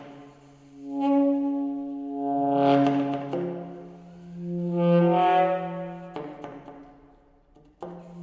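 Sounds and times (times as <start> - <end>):
alto saxophone solo: 0.5 - 6.5.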